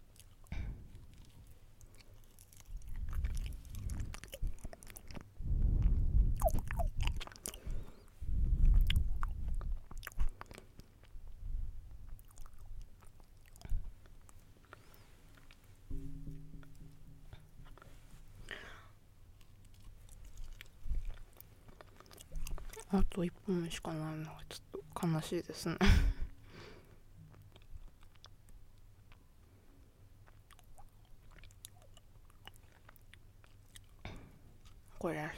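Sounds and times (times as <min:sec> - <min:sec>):
soft wet chewing of banana: 0:00.0 - 0:17.2, 0:19.4 - 0:23.2, 0:27.3 - 0:29.3, 0:30.2 - 0:34.9
speech: 0:22.9 - 0:26.0.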